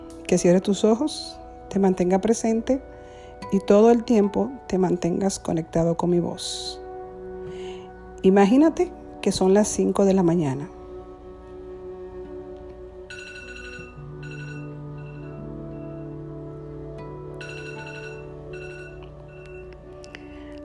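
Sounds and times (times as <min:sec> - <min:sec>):
speech: 0:00.3 - 0:06.8, 0:08.2 - 0:10.8
alarm clock ringing in bright electronic bursts: 0:13.1 - 0:16.2, 0:17.4 - 0:19.8.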